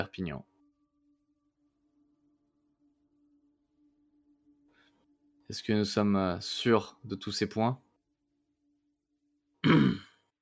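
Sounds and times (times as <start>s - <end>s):
speech: 0.0s - 0.5s, 5.5s - 7.8s, 9.6s - 10.1s
woman coughing: 9.6s - 10.1s.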